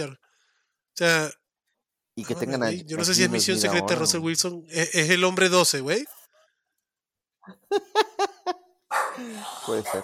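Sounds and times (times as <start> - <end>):
speech: 0.0 - 0.2, 1.0 - 1.4, 2.2 - 6.2, 7.4 - 8.3, 9.2 - 10.0
laughter: 7.5 - 8.8
dog barking: 8.9 - 10.0.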